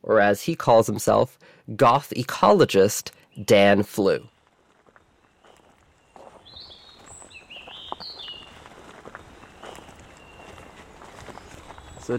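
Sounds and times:
speech: 0.1 - 4.3
bird chirps: 2.8 - 12.1
footsteps crunching on a path through wooded parts of a cemetery: 4.0 - 12.1.

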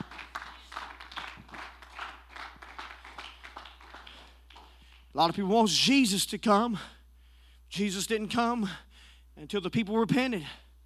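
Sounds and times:
audience clapping hands: 0.0 - 5.5
speech: 5.2 - 7.0, 7.7 - 10.6.

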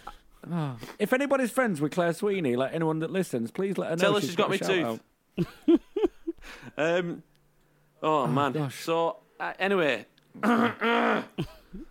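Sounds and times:
speech: 0.5 - 7.3, 8.0 - 11.9
short guttural grunt: 10.4 - 11.4
loud rough throat clearing: 10.4 - 11.9.

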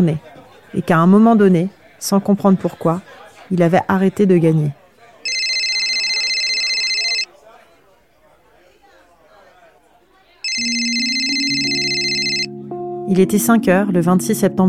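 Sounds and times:
speech: 0.0 - 4.8, 13.1 - 14.6
murmuring crowd chatter: 0.0 - 12.8
shrill electronic mobile phone ringtone: 5.3 - 7.3, 10.4 - 12.5.

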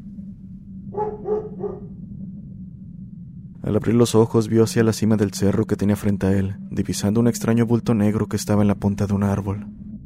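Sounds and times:
steady low hum: 0.0 - 10.0
dog barking: 0.9 - 2.0
speech: 3.6 - 9.9.

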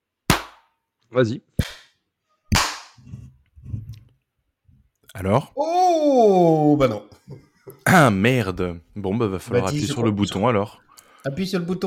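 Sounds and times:
speech: 1.1 - 1.7, 5.2 - 11.8
sharp loud hand claps: 1.6 - 3.0.

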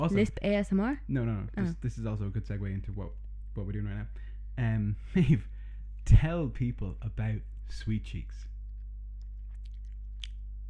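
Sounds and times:
speech: 0.0 - 8.5
steady low electrical hum: 0.0 - 10.6
wet chewing with crunchy bites: 8.7 - 10.6.

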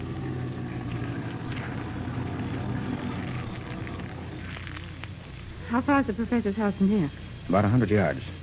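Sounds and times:
bushes crackling and rustling under a car: 0.0 - 6.2
car engine rumbling while driving off road: 0.0 - 6.4
speech: 5.7 - 8.4.

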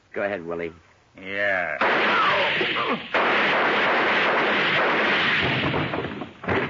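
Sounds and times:
speech: 0.2 - 5.5
gunshots fired at close range with the gun held up close to muffle it: 1.8 - 6.5.

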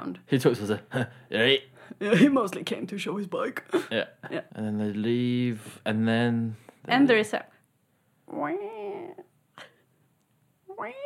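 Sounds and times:
speech: 0.1 - 7.5, 8.3 - 9.2, 10.8 - 11.0
human voice imitating a cat meow: 8.3 - 9.2, 10.7 - 11.0.

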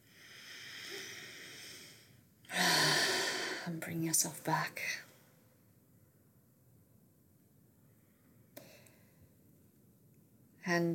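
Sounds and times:
deep breath during a guided self-regulation exercise: 0.0 - 3.7
speech: 3.7 - 5.1, 10.7 - 10.9.

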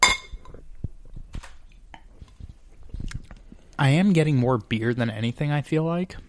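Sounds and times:
glass clinking while mixing a cocktail: 0.0 - 0.6
speech: 3.8 - 6.2.

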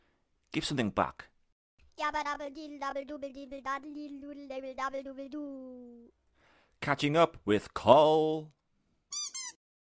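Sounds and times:
speech: 0.5 - 1.3, 2.0 - 6.2, 6.8 - 9.4
rubber squeaky toy squeaks: 9.1 - 9.6.

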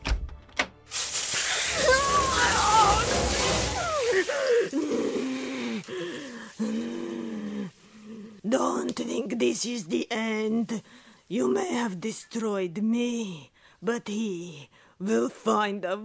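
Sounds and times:
water spraying from a shower hose: 0.9 - 7.6
speech: 9.0 - 16.0.

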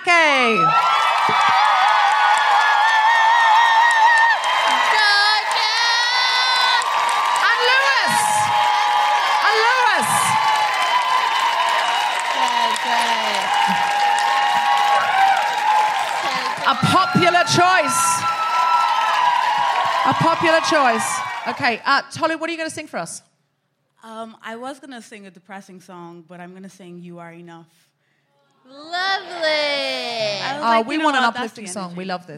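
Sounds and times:
live audience cheering and shouting: 0.0 - 21.9, 28.8 - 31.7
speech: 0.4 - 0.9, 20.1 - 23.3, 24.2 - 27.9, 28.6 - 32.3
live audience clapping: 0.4 - 21.8.

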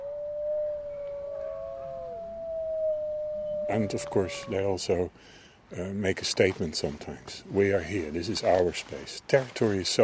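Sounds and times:
several wolves howling together: 0.0 - 4.8
speech: 3.7 - 10.0.

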